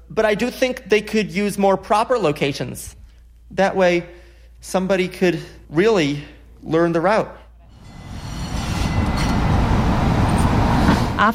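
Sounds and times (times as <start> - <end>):
speech: 0.1 - 7.4
subway train rumbling along the rails in a loud steady low roar: 7.7 - 11.3.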